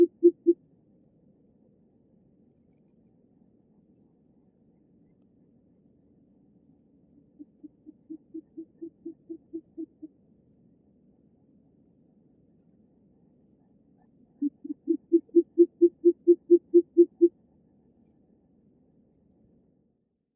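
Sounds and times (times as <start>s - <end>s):
short-eared owl low muffled hoots: 0.0s - 0.6s, 7.4s - 10.1s, 14.4s - 17.3s.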